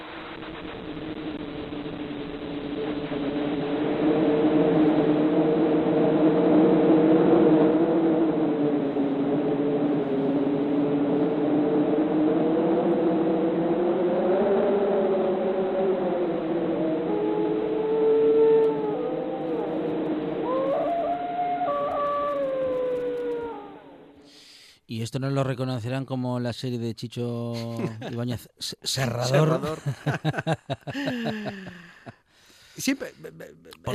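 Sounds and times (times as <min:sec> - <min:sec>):
wind blowing: 0:00.0 - 0:24.3
dog howling: 0:16.8 - 0:24.2
speech: 0:25.1 - 0:31.8, 0:32.8 - 0:33.9
laughter: 0:27.6 - 0:28.3, 0:29.3 - 0:32.1.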